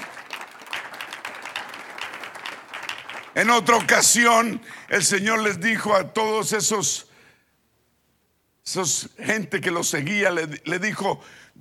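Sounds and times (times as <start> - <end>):
audience applauding during a sermon: 0.0 - 4.4
speech: 3.4 - 7.1, 8.7 - 11.5.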